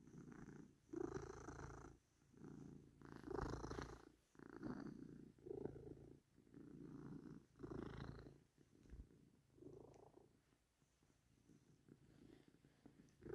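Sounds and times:
cat purring: 0.0s - 13.3s.

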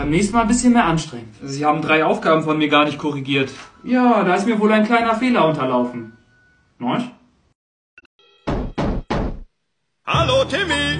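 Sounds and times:
speech: 0.0s - 6.2s, 6.8s - 7.2s, 10.1s - 10.9s
loud heavy knocks on a door: 8.5s - 9.5s.

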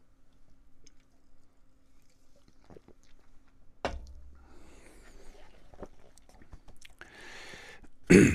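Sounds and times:
person sipping water: 0.8s - 3.6s, 4.4s - 7.8s
speech: 8.1s - 8.3s.

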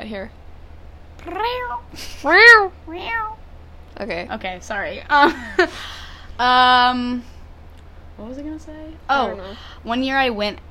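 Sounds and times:
speech: 0.0s - 0.4s, 1.2s - 7.3s, 8.2s - 10.6s
person imitating a cat meowing: 1.2s - 3.4s.

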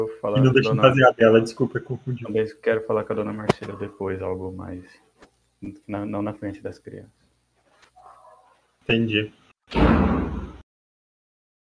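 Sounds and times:
speech: 0.0s - 7.2s, 8.9s - 10.2s
door slamming shut: 9.7s - 10.6s.

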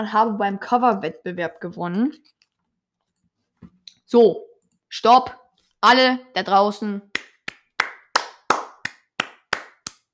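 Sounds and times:
speech: 0.0s - 2.4s, 4.1s - 7.3s
hand claps: 7.1s - 10.1s.

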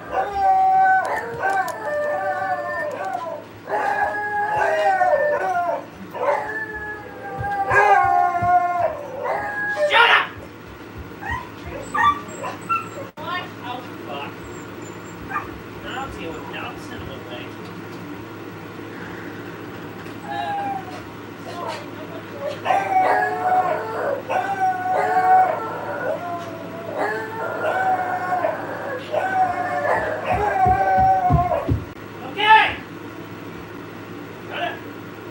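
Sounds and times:
dog barking and howling: 0.0s - 10.5s, 11.2s - 13.2s, 14.6s - 16.7s, 20.2s - 32.0s.

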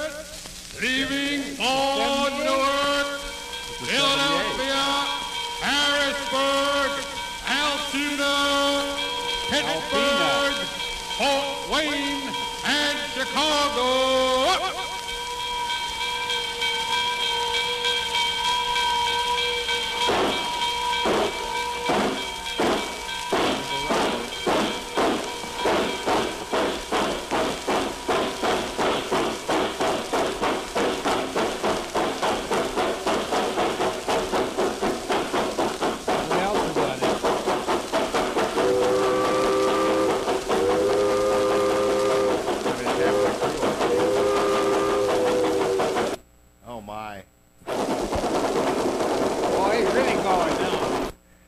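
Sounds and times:
steam locomotive whistle blasts: 0.0s - 31.8s, 38.4s - 46.2s
steam locomotive chuffing as it gathers speed: 0.0s - 46.9s, 47.6s - 51.4s
speech: 0.8s - 2.0s.

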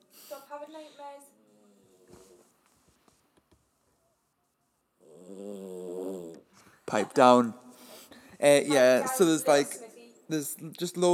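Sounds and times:
dog snoring: 5.0s - 6.4s
speech: 6.9s - 7.6s, 8.4s - 11.1s.

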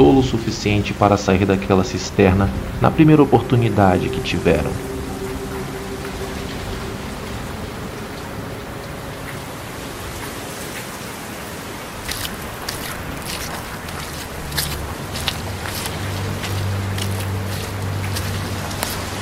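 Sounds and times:
heavy rain drops hitting a surface: 0.0s - 19.1s
speech: 0.2s - 5.0s.

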